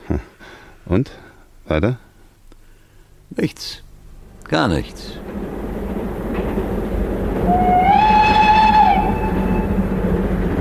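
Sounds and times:
speech: 0:00.1 - 0:02.0, 0:03.4 - 0:03.8, 0:04.5 - 0:05.2
train rumbling on rails: 0:03.8 - 0:10.5
train whistle: 0:07.4 - 0:10.0.

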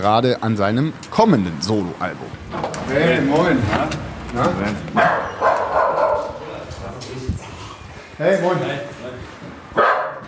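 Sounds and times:
speech: 0:00.0 - 0:05.3, 0:08.2 - 0:08.9
dog barking and yipping: 0:05.0 - 0:06.4, 0:09.8 - 0:10.2.

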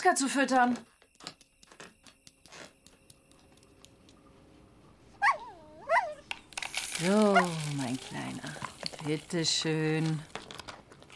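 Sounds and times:
speech: 0:00.0 - 0:01.3, 0:07.0 - 0:10.3
dog giving short high whimpering yelps: 0:05.2 - 0:06.2.

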